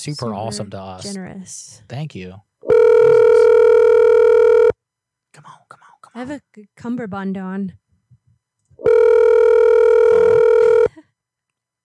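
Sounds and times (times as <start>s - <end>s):
speech: 0.0s - 3.2s, 5.4s - 7.8s
outgoing phone call ringback tone: 2.7s - 4.7s, 8.8s - 10.9s.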